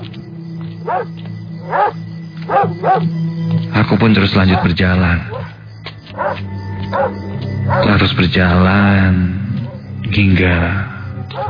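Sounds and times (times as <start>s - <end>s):
speech: 0.8s - 2.0s, 2.9s - 3.2s, 4.0s - 5.4s, 7.8s - 9.4s, 10.1s - 11.4s
dog barking inside a house: 0.8s - 3.1s, 4.5s - 4.7s, 5.3s - 5.5s, 6.1s - 7.9s.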